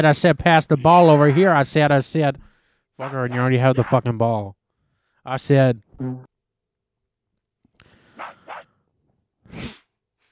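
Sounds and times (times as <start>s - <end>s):
speech: 0.0s - 4.6s, 5.2s - 6.3s
dog barking loudly: 3.0s - 4.0s, 8.2s - 8.7s.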